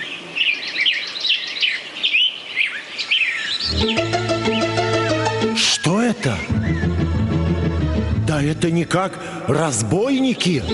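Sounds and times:
chorus of birds singing in a forest: 0.0s - 7.4s, 10.2s - 10.7s
steady musical tone with a low drone: 3.7s - 8.7s
speech: 6.2s - 7.7s, 8.4s - 10.7s.

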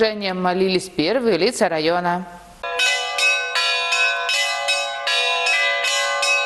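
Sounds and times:
speech: 0.0s - 2.4s
church bells ringing a lively peal: 2.6s - 6.4s.

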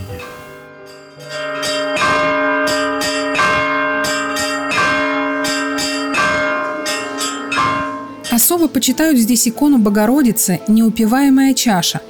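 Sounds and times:
church bells ringing in a full continuous peal: 0.0s - 9.4s
speech: 8.6s - 12.0s.

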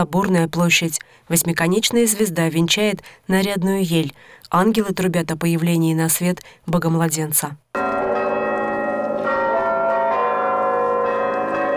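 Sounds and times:
speech: 0.0s - 7.6s
several cathedral church bells ringing: 7.8s - 11.7s.

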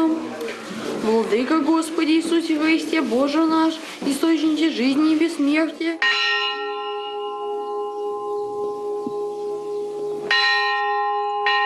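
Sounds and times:
speech: 1.0s - 6.3s
single church bell ringing: 6.0s - 11.6s.

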